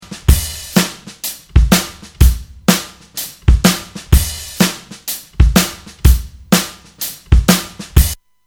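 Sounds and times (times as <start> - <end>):
acoustic drums: 0.0 - 8.2.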